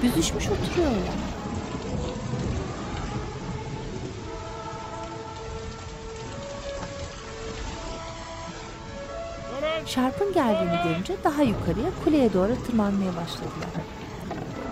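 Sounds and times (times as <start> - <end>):
speech: 0.0 - 1.5, 9.9 - 14.0
deep thunder rumbling low: 0.0 - 14.6
heavy steady rain pouring down: 0.0 - 14.6.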